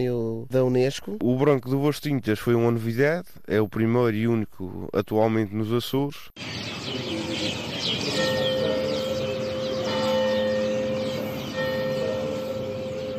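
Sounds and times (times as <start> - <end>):
speech: 0.0 - 7.0
church bells ringing in the main square of Madalena on Pico Island: 6.4 - 13.1
dense chorus of birds chirping and singing in a town square: 6.4 - 13.1.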